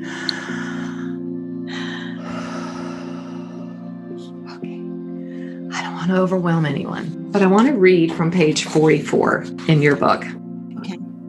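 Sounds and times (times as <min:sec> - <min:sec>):
deep breathing: 0:00.0 - 0:05.7
speech: 0:06.0 - 0:10.4.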